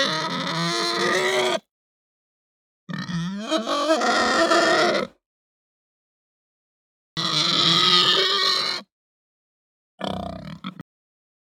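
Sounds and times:
Hampshire breed pig giving a long harsh high squeal: 0:00.0 - 0:01.7, 0:02.9 - 0:05.2, 0:07.2 - 0:08.9
Hampshire breed pig shorter grunting squeal: 0:00.0 - 0:01.7, 0:02.9 - 0:05.2, 0:07.2 - 0:08.9, 0:10.0 - 0:10.8.

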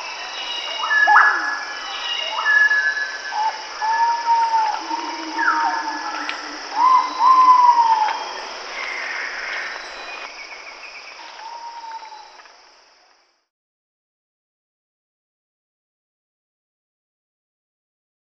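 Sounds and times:
chorus of birds: 0:00.0 - 0:12.5
high insect drone: 0:00.0 - 0:13.5
ivory-breasted pitta giving clear slurred whistles: 0:03.9 - 0:08.4.

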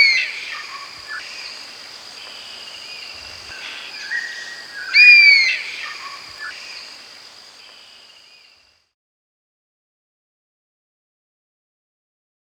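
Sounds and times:
constant shrill insect hum: 0:00.0 - 0:08.8
Oriental honey buzzard high whistled call: 0:03.6 - 0:06.5.

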